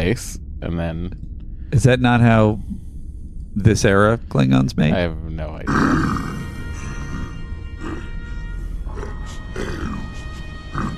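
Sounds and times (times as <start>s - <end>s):
speech: 0.0s - 2.8s, 3.6s - 6.3s
creature growling and roaring: 5.4s - 8.1s, 8.9s - 10.9s.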